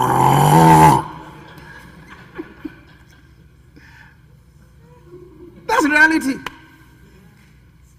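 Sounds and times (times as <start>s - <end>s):
voice imitating snoring: 0.0s - 1.2s
laughter: 1.2s - 3.8s, 4.6s - 5.7s.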